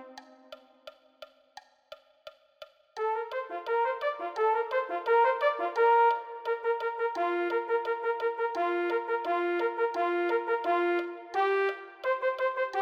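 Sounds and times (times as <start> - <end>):
mellophone playing: 3.0 - 12.8.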